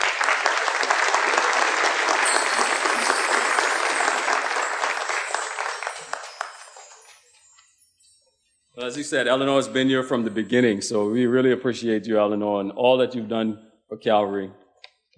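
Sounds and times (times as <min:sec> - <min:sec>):
audience applause: 0:00.0 - 0:07.1
speech: 0:08.9 - 0:14.6.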